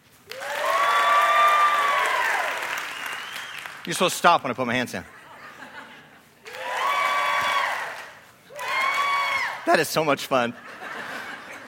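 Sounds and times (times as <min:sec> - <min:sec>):
high whooping cheer: 0:00.2 - 0:03.8, 0:06.4 - 0:09.6
crowd applauding loudly: 0:00.2 - 0:04.2, 0:06.4 - 0:09.6
speech: 0:03.9 - 0:05.2, 0:09.7 - 0:10.8
laughter: 0:05.1 - 0:06.3, 0:10.5 - 0:11.6.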